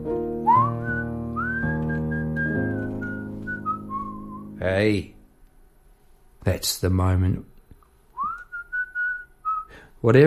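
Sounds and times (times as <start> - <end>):
steady backing music: 0.0 - 5.2
person whistling a short bright melody: 0.4 - 4.6, 8.2 - 9.8
speech: 4.6 - 5.2, 6.4 - 7.5, 10.0 - 10.2.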